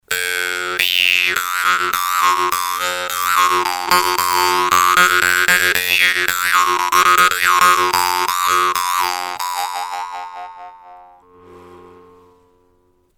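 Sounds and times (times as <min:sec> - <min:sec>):
vargan jaw harp: 0:00.1 - 0:11.4.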